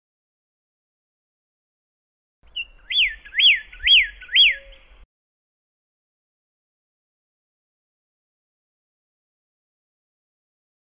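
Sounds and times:
pyrrhuloxia singing whistled slurs: 0:02.5 - 0:05.0.

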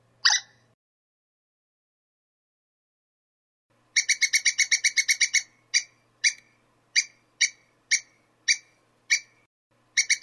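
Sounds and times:
squirrel chattering: 0:00.2 - 0:00.6, 0:04.0 - 0:06.4, 0:07.0 - 0:09.3, 0:10.0 - 0:10.2.

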